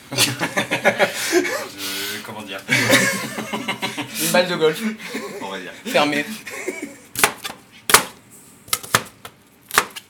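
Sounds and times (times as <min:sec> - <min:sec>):
speech: 0:00.1 - 0:00.4, 0:04.4 - 0:06.5
laughter: 0:00.1 - 0:01.8, 0:02.7 - 0:07.1
knife chopping small white onions on a board in a kitchen: 0:07.2 - 0:09.1, 0:09.7 - 0:10.0.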